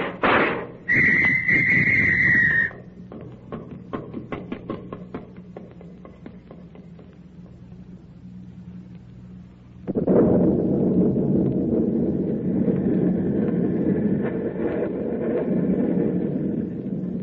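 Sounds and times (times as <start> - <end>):
stormy wind roaring over the sea: 0.0 - 3.7, 9.8 - 17.2.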